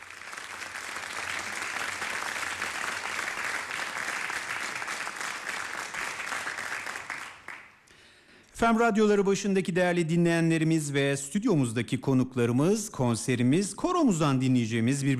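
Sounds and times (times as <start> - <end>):
studio audience applause welcoming a conductor at a radio concert: 0.0 - 7.8
speech: 8.6 - 15.1.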